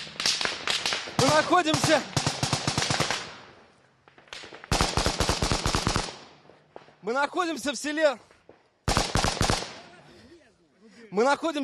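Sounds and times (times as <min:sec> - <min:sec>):
gunfire near a railway station in Rubizhne: 0:00.0 - 0:07.0, 0:08.8 - 0:09.8
speech: 0:01.2 - 0:02.2, 0:07.0 - 0:08.3, 0:11.1 - 0:11.6.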